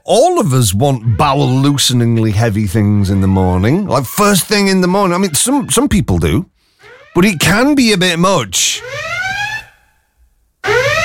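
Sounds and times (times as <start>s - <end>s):
speech: 0.0s - 6.6s, 7.2s - 9.2s
siren-style alarm sound effect: 8.7s - 11.0s.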